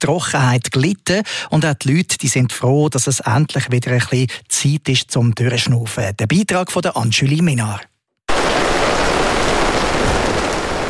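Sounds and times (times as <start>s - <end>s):
speech: 0.0s - 8.5s
distant thunder: 8.3s - 10.8s
steady heavy rain pouring: 8.3s - 10.8s.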